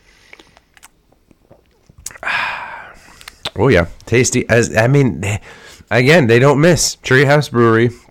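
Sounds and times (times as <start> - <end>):
mouth clicks: 0.3 - 2.3, 3.0 - 3.6
speech: 3.6 - 8.0.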